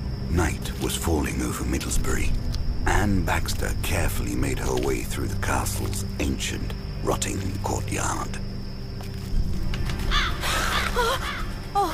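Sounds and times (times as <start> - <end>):
low rumble of outdoor ambience: 0.0 - 8.4
speech: 0.3 - 8.5
crow cawing: 10.0 - 11.9.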